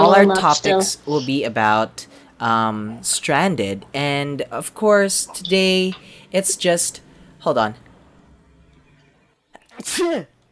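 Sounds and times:
speech: 0.1s - 7.9s, 9.8s - 10.3s
person sneezing: 9.6s - 10.3s.

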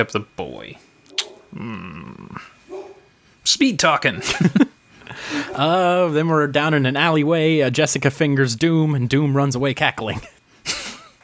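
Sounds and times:
speech: 0.0s - 0.9s, 1.5s - 2.6s, 3.4s - 10.4s
dog giving a drawn-out tonal bark: 1.1s - 1.5s, 2.7s - 3.1s
laughter: 4.1s - 5.8s.

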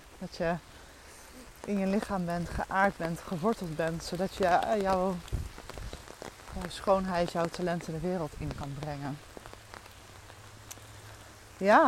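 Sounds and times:
steady rain falling: 0.0s - 11.8s
speech: 0.2s - 0.7s, 1.6s - 5.4s, 6.6s - 9.3s, 11.6s - 11.8s.

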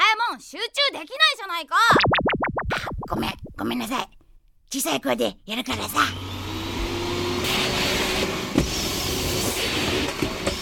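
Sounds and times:
speech: 0.3s - 6.3s
vacuum cleaner running: 5.7s - 10.5s.

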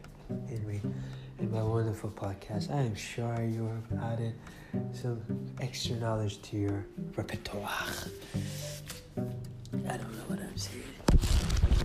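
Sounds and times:
speech: 0.6s - 9.3s, 9.9s - 11.4s
rustling of a book being handled: 10.9s - 11.8s.

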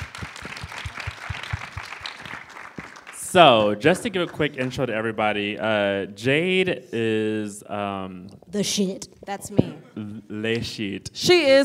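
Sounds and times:
audience applause: 0.0s - 5.0s
speech: 3.3s - 11.6s.

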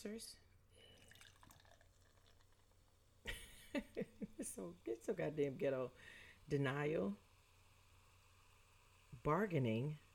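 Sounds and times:
speech: 0.0s - 0.5s, 3.8s - 7.2s, 9.2s - 10.0s
beer pouring into a glass: 0.7s - 3.2s.

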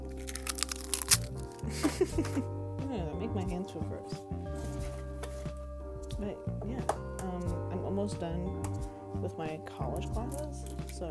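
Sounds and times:
eggs being cracked for brownie batter: 0.0s - 1.7s, 10.4s - 11.0s
speech: 1.7s - 5.1s, 6.2s - 7.4s, 8.0s - 11.0s.

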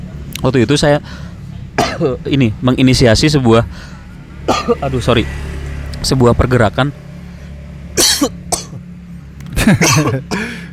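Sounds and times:
speech: 0.4s - 1.3s, 1.9s - 7.0s, 8.0s - 8.4s, 9.6s - 10.5s
coughing and choking: 1.8s - 2.2s, 4.5s - 4.9s, 8.0s - 8.9s, 9.5s - 10.6s.

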